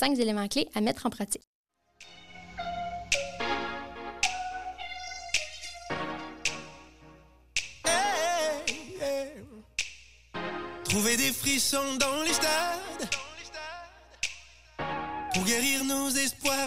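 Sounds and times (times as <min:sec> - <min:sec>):
speech: 0:00.0 - 0:01.6, 0:10.9 - 0:13.2, 0:15.4 - 0:16.6
pop song: 0:02.0 - 0:07.0, 0:07.6 - 0:16.6
person singing: 0:04.2 - 0:06.7, 0:07.8 - 0:09.6, 0:10.8 - 0:16.6.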